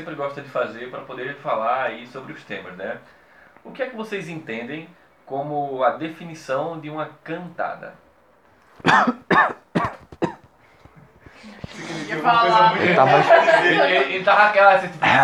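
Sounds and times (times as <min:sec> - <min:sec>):
speech: 0:00.0 - 0:08.0, 0:08.8 - 0:09.6, 0:11.4 - 0:15.2
man with an itchy throat coughing and clearing his throat: 0:08.8 - 0:10.5
laughter: 0:11.3 - 0:15.2.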